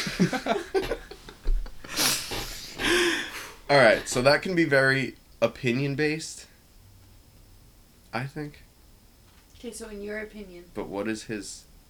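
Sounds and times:
laughter: 0.0 - 3.2
speech: 0.1 - 0.7, 3.7 - 6.5, 8.1 - 8.6, 9.6 - 11.7
breathy nasal sniffing: 1.8 - 4.2.

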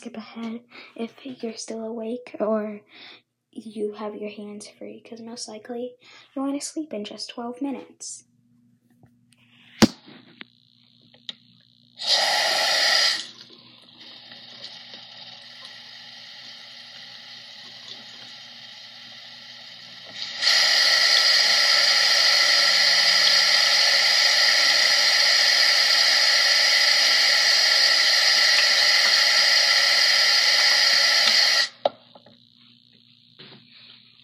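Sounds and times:
speech: 0.0 - 8.3
running tap water while someone washes their hands: 12.0 - 31.8.

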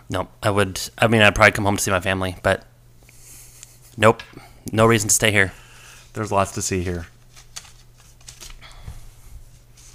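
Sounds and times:
speech: 0.1 - 2.7, 4.0 - 7.2
paper question cards rustling as one is drawn from a pile: 6.2 - 9.9.

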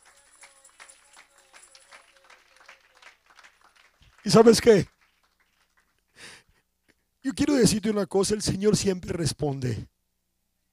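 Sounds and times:
audience applause: 0.0 - 6.0
speech: 4.2 - 4.9, 7.6 - 9.9.

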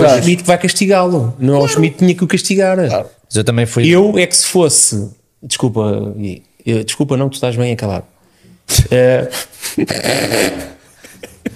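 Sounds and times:
speech: 0.0 - 8.1, 8.7 - 10.8
dog yipping: 1.6 - 2.0.

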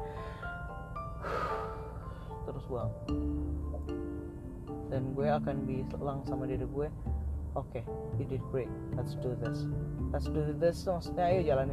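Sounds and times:
long deep breath in: 1.2 - 2.4
speech: 2.6 - 4.1, 4.9 - 11.7.

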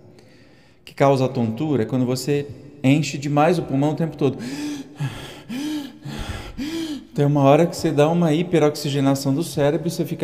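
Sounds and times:
speech: 0.9 - 5.2, 7.2 - 10.2
person breathing forcefully in meditation breathing demonstration: 4.4 - 7.2.

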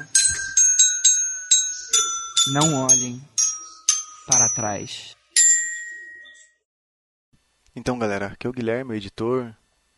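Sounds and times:
child's small toy bell ding: 0.0 - 6.6
speech: 2.4 - 3.3, 4.3 - 5.2, 7.8 - 9.6.

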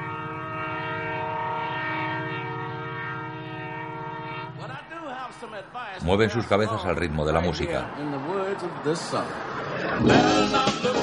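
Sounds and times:
horn blast of a distant train passing across a wide plain: 0.0 - 4.8
speech: 4.6 - 11.0.

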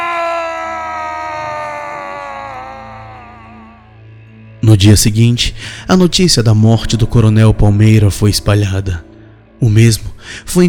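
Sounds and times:
man screaming in terror: 0.0 - 4.0
speech: 4.7 - 10.6.

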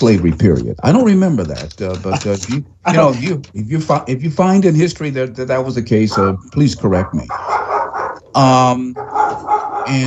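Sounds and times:
speech: 0.0 - 7.7, 8.4 - 10.0
dogs barking: 6.0 - 10.0.

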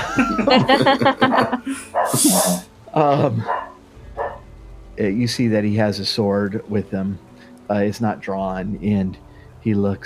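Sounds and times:
laughter: 0.0 - 3.5
speech: 0.2 - 3.7, 5.0 - 10.0
dog barking: 1.2 - 2.7, 3.4 - 4.4.

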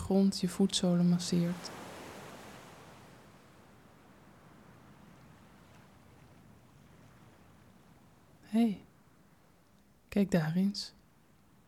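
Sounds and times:
speech: 0.1 - 1.8, 8.6 - 8.9, 10.1 - 11.0
ocean surf waves breaking on a beach: 0.9 - 8.4.

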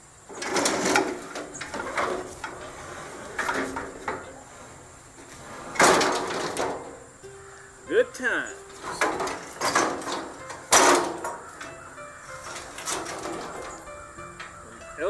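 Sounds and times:
lawn chairs dragged and scraping: 0.3 - 15.0
quieter rustling: 0.3 - 15.0.

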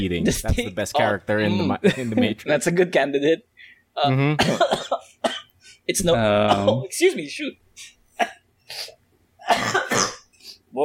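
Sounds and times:
speech: 0.0 - 5.1, 5.9 - 10.1
rough throaty coughs: 4.4 - 5.5, 6.4 - 6.8, 8.2 - 8.4, 9.4 - 10.3.

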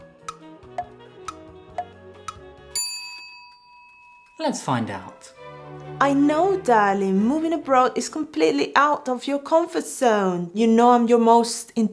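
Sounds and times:
quiz answer countdown timer ticking: 0.0 - 2.6
low musical bed: 0.0 - 8.0
bright bell-like chime: 2.7 - 5.0
speech: 4.4 - 5.3, 6.0 - 11.9.

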